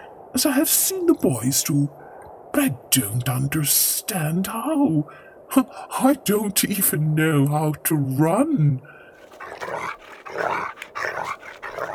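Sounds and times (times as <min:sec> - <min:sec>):
speech: 0:00.3 - 0:02.0, 0:02.6 - 0:09.0
dog barking and growling: 0:09.2 - 0:11.9.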